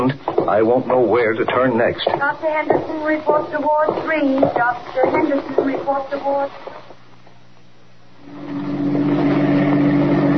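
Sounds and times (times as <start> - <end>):
speech: 0.1 - 6.8
car engine driving up to park by a harbor dock at night in heavy mist: 8.3 - 10.3.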